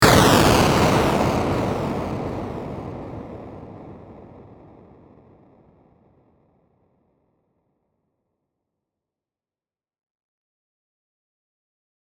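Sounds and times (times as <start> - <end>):
game explosion: 0.0 - 3.1.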